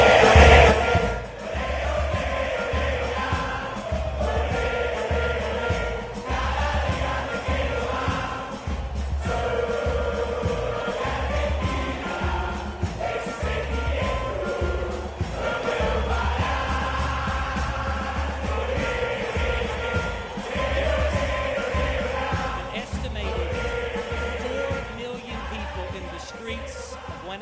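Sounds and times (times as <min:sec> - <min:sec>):
huge street crowd cheering and chanting celebrating World Cup victory in Buenos Aires: 0:00.0 - 0:27.4
steady pounding beat: 0:00.0 - 0:27.4.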